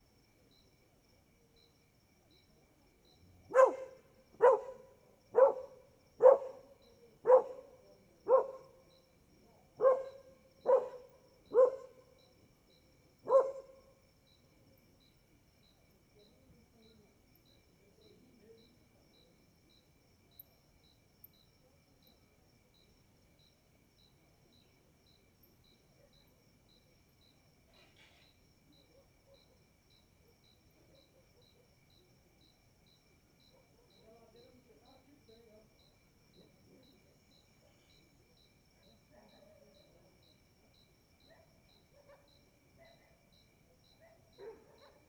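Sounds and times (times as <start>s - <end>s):
dog barking while passing by: 3.5s - 8.8s, 9.8s - 12.1s, 13.3s - 13.8s, 41.3s - 43.3s, 44.0s - 45.0s.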